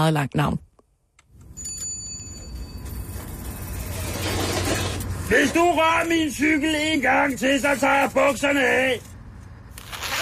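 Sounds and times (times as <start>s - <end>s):
speech: 0.0s - 0.6s, 5.3s - 9.1s
rumble of engine or traffic noise: 1.0s - 10.2s
ice cream van bell chime: 1.4s - 3.8s.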